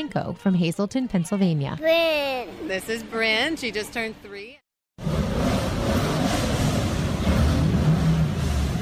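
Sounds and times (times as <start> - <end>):
speech: 0.0 - 4.6
rally car engine revving and rumbling: 5.0 - 8.7.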